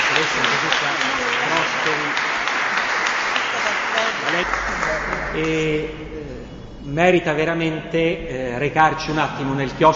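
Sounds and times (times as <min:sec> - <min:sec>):
audience applause thanking two presenters at the close of a guided talk: 0:00.0 - 0:06.0
speech: 0:01.8 - 0:02.4, 0:03.6 - 0:09.9.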